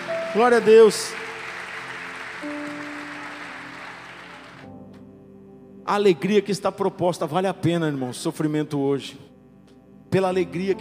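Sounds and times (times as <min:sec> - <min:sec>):
audience applauding: 0:00.0 - 0:04.7
speech: 0:00.4 - 0:01.2, 0:05.9 - 0:09.3, 0:10.1 - 0:10.7.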